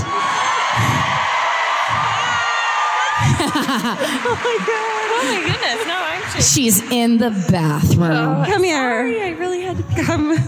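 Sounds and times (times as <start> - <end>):
excited screaming: 0.0 - 6.5
laughter: 1.8 - 6.7, 9.5 - 10.4
speech: 3.4 - 10.4.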